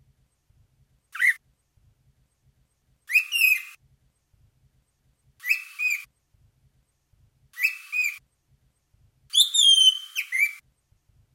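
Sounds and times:
bird two-part harmonic whistled call: 1.2s - 1.4s, 3.1s - 3.8s, 5.4s - 6.1s, 7.6s - 8.2s, 9.3s - 10.6s.

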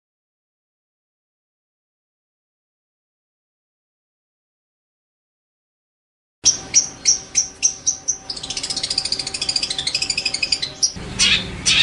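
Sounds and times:
long-tailed shrike song of sharp notes, trill and scratchy phrase: 6.4s - 11.8s.

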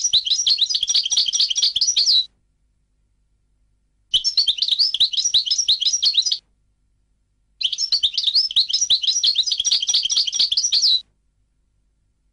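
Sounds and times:
European goldfinch twittering song: 0.0s - 2.3s, 4.2s - 6.4s, 7.6s - 11.0s.

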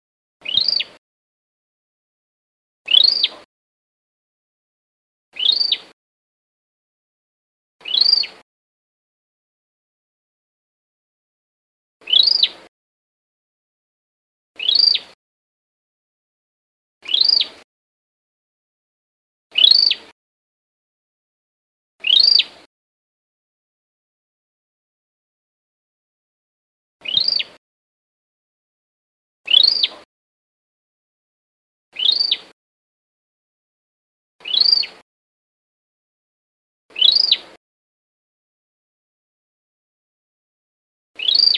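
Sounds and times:
Cambodian tailorbird alarm call: 0.4s - 1.0s, 2.9s - 3.4s, 5.4s - 5.9s, 7.8s - 8.4s, 12.0s - 12.5s, 14.6s - 15.1s, 17.0s - 17.6s, 19.6s - 20.0s, 22.0s - 22.5s, 27.0s - 27.6s, 29.5s - 30.0s, 32.0s - 32.5s, 34.4s - 35.0s, 36.9s - 37.4s, 41.2s - 41.5s.

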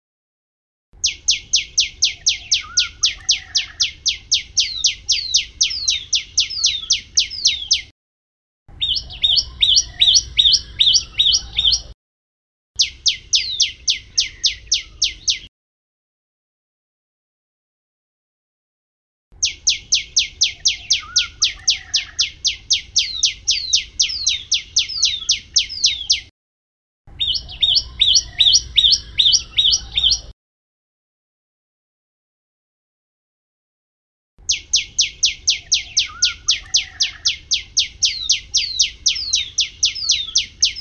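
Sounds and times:
prenjak lumut bird alarm call: 1.0s - 7.9s, 8.7s - 12.0s, 12.8s - 15.5s, 19.4s - 26.3s, 27.1s - 30.3s, 34.4s - 40.7s.

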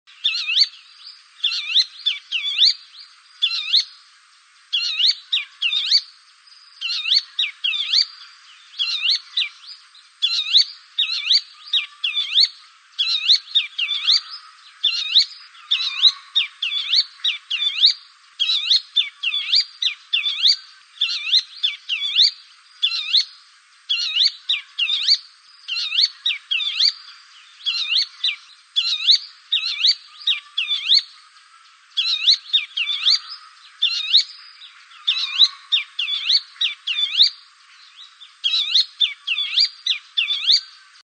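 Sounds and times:
bronze sunbird calling: 0.1s - 41.0s.

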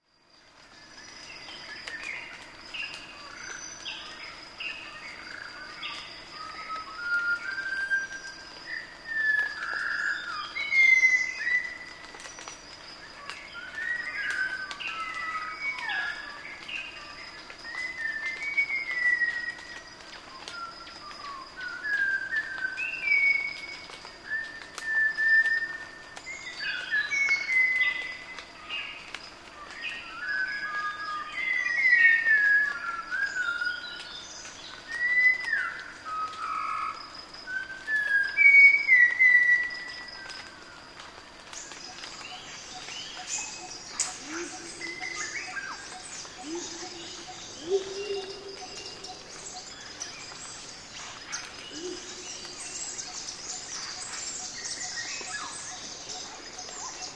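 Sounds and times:
sunbird calls in a forest: 0.9s - 40.8s, 41.4s - 57.1s.

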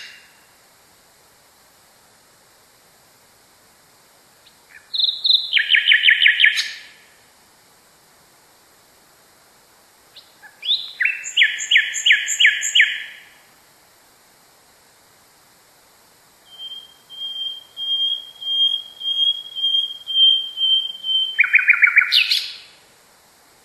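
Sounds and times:
nightingale song: 0.0s - 0.6s, 4.3s - 7.3s, 10.0s - 13.6s, 16.4s - 23.0s.

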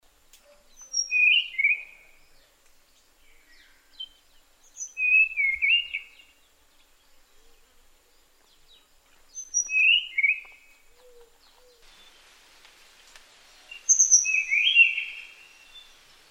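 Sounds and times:
Tanahjampea blue flycatcher singing whistled phrases: 0.8s - 2.0s, 4.8s - 6.3s, 9.4s - 10.6s, 13.7s - 16.0s.

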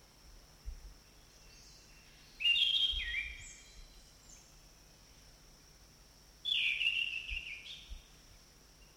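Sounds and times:
Orange-banded thrush warbling song in forest: 1.4s - 4.5s, 6.4s - 8.0s.

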